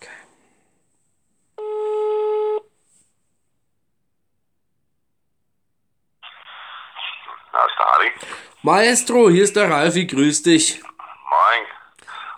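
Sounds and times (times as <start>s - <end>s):
telephone placing a call with a buzzing tone: 1.6s - 2.6s
speech: 8.0s - 10.9s.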